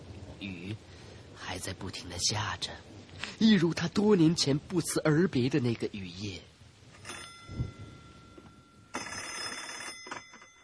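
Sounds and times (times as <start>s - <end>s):
speech: 0.4s - 6.5s
telephone bell ringing: 7.0s - 10.6s.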